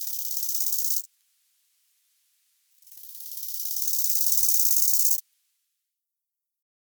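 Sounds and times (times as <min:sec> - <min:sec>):
bow-winged grasshopper stridulating in high hissing pulsed bursts: 0:00.0 - 0:01.1, 0:02.8 - 0:05.2.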